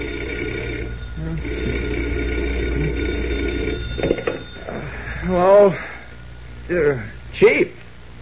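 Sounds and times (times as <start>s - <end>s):
old-fashioned telephone bell ringing: 0.0s - 6.0s
speech: 5.3s - 5.9s, 6.7s - 7.7s.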